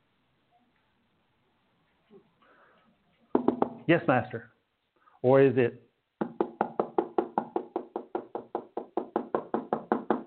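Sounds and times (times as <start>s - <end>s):
rapid knocking on a wooden door: 3.4s - 3.9s, 6.2s - 10.2s
speech: 3.9s - 4.6s, 5.2s - 5.9s.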